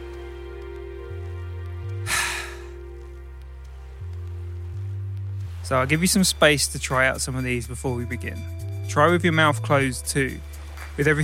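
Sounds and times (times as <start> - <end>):
steady humming musical background: 0.0 - 11.2
breathy exhale as if fogging up a window: 2.1 - 2.8
speech: 5.7 - 11.2.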